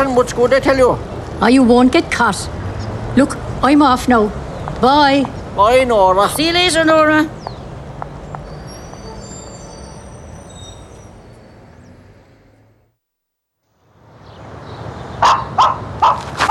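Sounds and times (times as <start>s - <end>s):
speech: 0.2s - 2.6s, 3.2s - 7.4s
dog barking: 15.2s - 16.3s.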